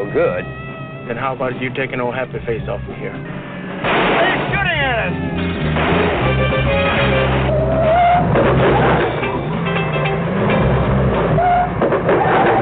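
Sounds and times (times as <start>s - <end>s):
car engine running with low droning rumble: 0.0s - 12.6s
speech: 0.1s - 7.3s, 8.3s - 9.2s, 11.9s - 12.6s.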